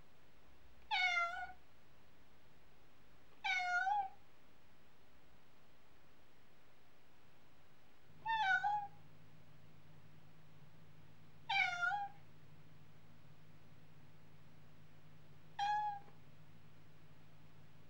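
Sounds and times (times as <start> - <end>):
domestic cat meowing: 0.9 - 1.6, 3.4 - 4.2, 8.2 - 9.0, 11.5 - 12.2, 15.6 - 16.1
steady low hum: 8.0 - 17.8.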